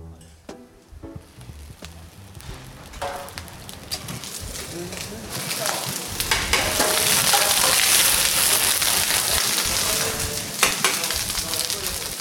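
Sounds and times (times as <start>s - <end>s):
paella of broth, rice and saffron frying in a Valencia restaurant: 0.9s - 12.1s.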